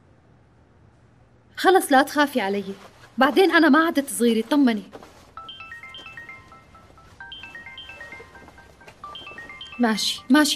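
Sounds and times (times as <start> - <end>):
speech: 1.6 - 5.1, 9.8 - 10.5
mobile phone ringtone melodic phrase of high notes: 5.4 - 10.5.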